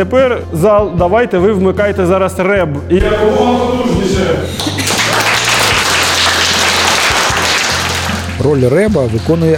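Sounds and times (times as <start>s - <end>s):
speech: 0.0s - 4.8s, 8.4s - 9.5s
large audience of students applauding loudly in a lecture hall: 4.5s - 9.5s.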